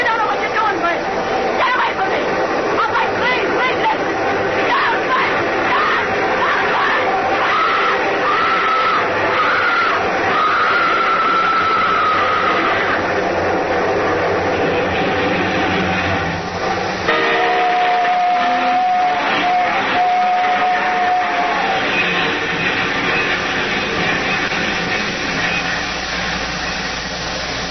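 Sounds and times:
long loud train rumbling past: 0:00.0 - 0:27.6
sustained train whistling tone: 0:05.8 - 0:13.0, 0:17.0 - 0:22.4.

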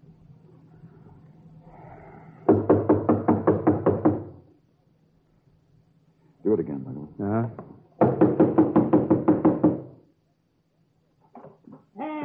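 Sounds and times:
rapid knocking: 0:02.5 - 0:04.4, 0:07.6 - 0:10.0
speech: 0:06.5 - 0:07.8.

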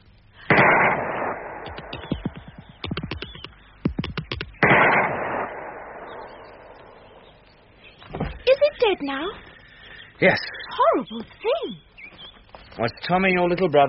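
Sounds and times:
rapid gunfire cracks: 0:00.4 - 0:07.2
gunshots fired at a strange thing in a garden: 0:00.4 - 0:07.4
speech: 0:09.0 - 0:09.5, 0:10.2 - 0:11.9, 0:12.8 - 0:13.8.

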